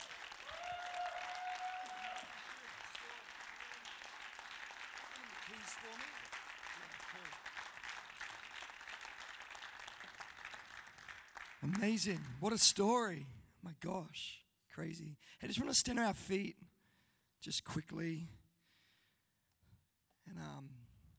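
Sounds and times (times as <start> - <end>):
faint voices and cheers: 0.0 - 4.0
large audience applauding at a church worship service: 0.0 - 12.5
speech: 5.6 - 6.4, 7.2 - 7.5, 11.6 - 16.6, 17.4 - 18.4.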